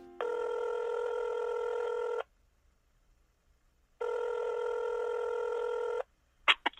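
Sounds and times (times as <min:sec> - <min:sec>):
telephone ringback tone while placing a call: 0:00.0 - 0:02.2, 0:04.0 - 0:06.0.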